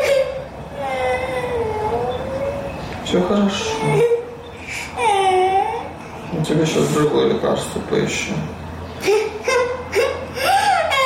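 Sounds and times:
young girl whimpering and crying after a minor burn: 0.0s - 2.7s, 3.6s - 6.0s, 9.0s - 11.0s
speech: 3.1s - 4.2s, 6.5s - 8.6s.

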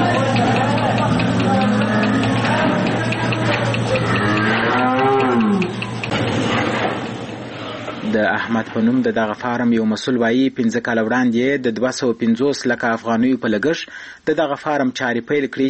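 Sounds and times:
steady low hum: 0.0s - 10.0s
dairy cattle lowing on a machine-milked farm: 3.8s - 6.0s
speech: 8.5s - 15.6s.

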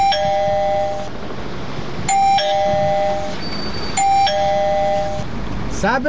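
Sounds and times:
electronic doorbell at a house door ringing with a two-note chime: 0.0s - 1.1s, 2.1s - 3.4s, 4.0s - 5.2s.

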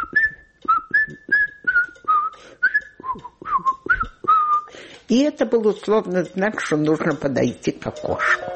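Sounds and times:
person whistling a short melodic tune: 0.0s - 4.7s
speech: 5.1s - 8.4s.

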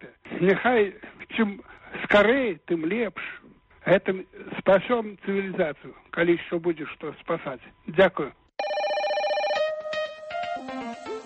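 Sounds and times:
speech: 0.4s - 8.4s
electronic telephone ringing for an incoming call: 8.6s - 11.2s.

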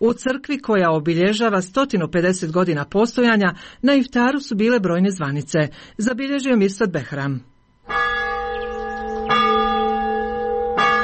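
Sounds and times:
speech: 0.0s - 7.5s
church bells ringing from the bell tower of an Orthodox church in Bijelo Polje: 7.9s - 11.0s.

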